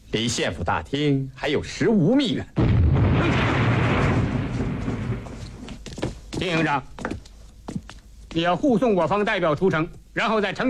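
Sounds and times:
speech: 0:00.1 - 0:02.6, 0:06.4 - 0:07.1, 0:08.4 - 0:10.6
artillery shell exploding during the shelling of a walled town: 0:02.6 - 0:05.6.

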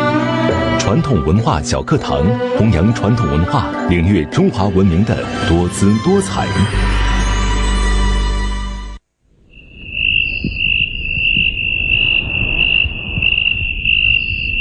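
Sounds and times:
sustained tones: 0:00.0 - 0:14.5
speech: 0:00.8 - 0:07.0
soft rustling outdoor background: 0:09.0 - 0:14.5
crickets chirping at night: 0:09.3 - 0:14.5.

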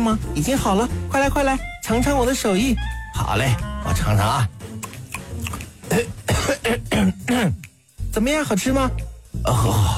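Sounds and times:
speech: 0:00.0 - 0:04.6, 0:05.9 - 0:07.6, 0:08.2 - 0:09.9
person coughing: 0:05.8 - 0:07.6.

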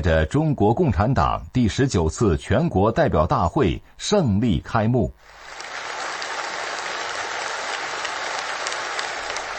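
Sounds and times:
speech: 0:00.0 - 0:05.5
roomful of people applauding in a village meeting room: 0:05.3 - 0:09.5.

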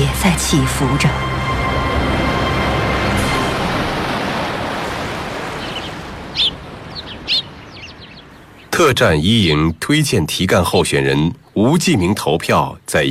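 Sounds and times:
speech: 0:00.5 - 0:01.3, 0:08.8 - 0:13.0
ocean surf washing along the shore: 0:01.3 - 0:08.8
bird chirps: 0:05.5 - 0:08.8.

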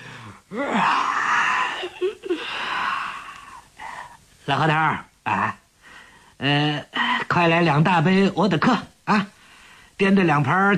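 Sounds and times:
man yawning: 0:00.1 - 0:04.0
speech: 0:00.5 - 0:01.1, 0:04.5 - 0:05.6, 0:06.4 - 0:09.4, 0:10.0 - 0:10.7.

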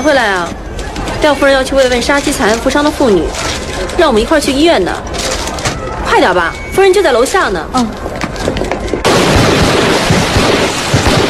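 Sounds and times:
speech: 0:00.0 - 0:05.3, 0:06.1 - 0:08.1
rough continuous roar: 0:00.0 - 0:11.2
rifle fire from a row of officer cadets at a military academy firing range: 0:09.0 - 0:11.2.

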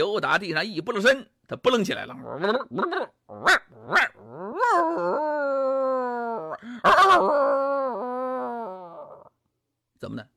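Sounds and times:
speech: 0:00.0 - 0:05.2, 0:10.0 - 0:10.3
human voice imitating a small hunting dog howling like a wolf: 0:02.2 - 0:09.4.

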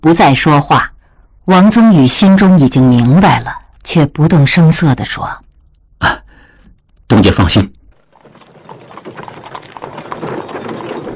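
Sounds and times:
speech: 0:00.0 - 0:00.9, 0:01.5 - 0:05.4, 0:06.0 - 0:06.2, 0:07.1 - 0:07.8
hooves of a horse-drawn carriage clip-clopping: 0:07.9 - 0:11.1.

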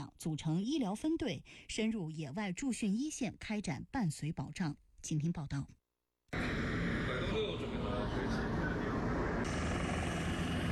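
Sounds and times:
speech: 0:00.2 - 0:08.6
army helicopter engines roaring during take-off: 0:06.4 - 0:10.7.

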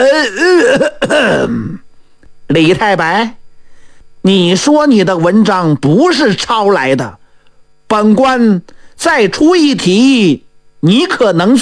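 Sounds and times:
speech: 0:00.0 - 0:01.8, 0:02.5 - 0:03.4, 0:04.2 - 0:07.2, 0:07.9 - 0:11.6
person imitating a deliberate theatrical cough: 0:00.0 - 0:01.9.

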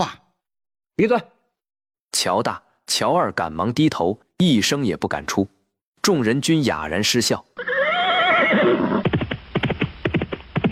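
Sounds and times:
speech: 0:01.0 - 0:01.4, 0:02.2 - 0:07.7
horse whinnying: 0:07.6 - 0:09.1
several fast horses galloping with hooves clattering: 0:08.5 - 0:10.6.

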